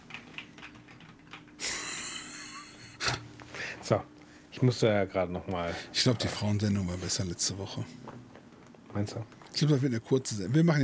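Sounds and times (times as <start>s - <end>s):
soft irregular keyboard typing clicks: 0.0s - 1.6s
low steady hum: 0.0s - 10.8s
speech: 3.8s - 10.8s.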